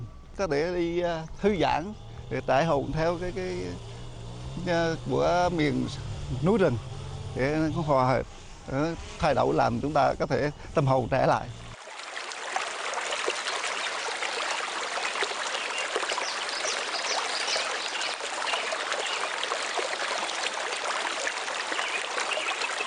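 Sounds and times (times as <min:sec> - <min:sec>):
speech: 0:00.4 - 0:03.9, 0:04.6 - 0:11.6
mountain stream water flowing over rocks in Vinh Thinh commune Gia Lai province: 0:11.8 - 0:22.8.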